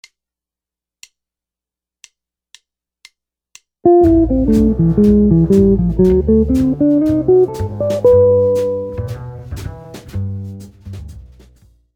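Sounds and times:
jazz guitar licks: 3.9s - 10.5s.

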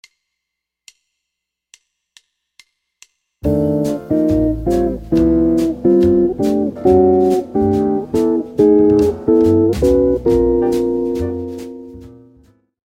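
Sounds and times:
jazz guitar: 3.4s - 12.6s.

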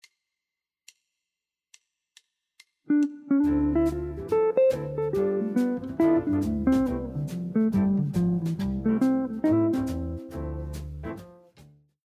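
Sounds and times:
jazz guitar playing a II V I chord progression: 2.9s - 11.3s.

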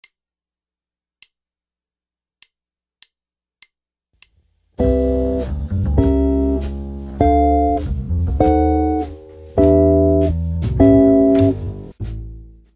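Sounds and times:
jazz chord progression on guitar: 4.8s - 12.6s.

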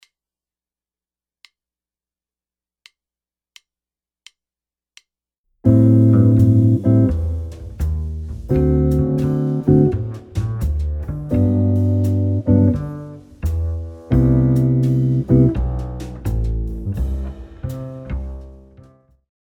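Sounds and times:
jazz guitar playing diatonic chords: 5.7s - 19.0s.

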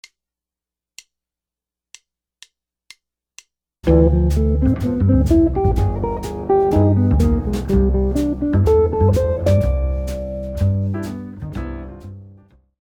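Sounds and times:
guitar playing altered scales: 3.9s - 12.0s.

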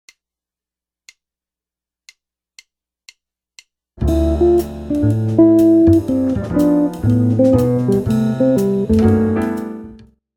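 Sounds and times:
jazz guitar lick: 4.0s - 10.0s.

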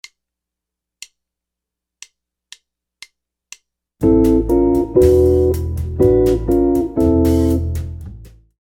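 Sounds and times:
jazz guitar chords: 4.0s - 8.5s.

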